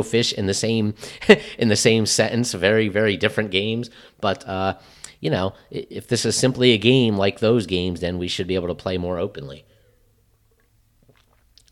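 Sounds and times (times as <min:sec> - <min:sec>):
speech: 0:00.0 - 0:09.7
low hiss: 0:00.0 - 0:11.6
person sipping and swallowing rye beer: 0:10.1 - 0:11.6.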